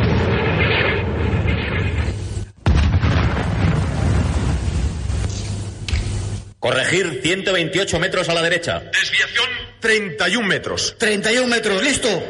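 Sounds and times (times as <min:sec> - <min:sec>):
artillery cannons firing in a war setting: 0:00.0 - 0:05.7
speech: 0:06.9 - 0:12.2.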